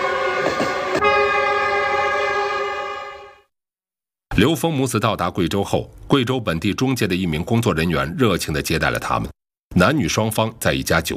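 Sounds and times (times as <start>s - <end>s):
rumbling rail noise of a train: 0.0s - 3.3s
train bound for Guizhou China sounding horn: 0.0s - 3.5s
speech: 4.4s - 11.1s.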